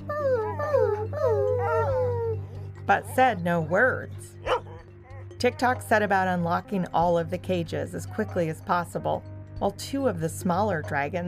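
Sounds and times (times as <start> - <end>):
dogs whining in locked cages: 0.0 - 3.3, 4.4 - 5.4
speech: 2.9 - 4.4, 5.4 - 11.2.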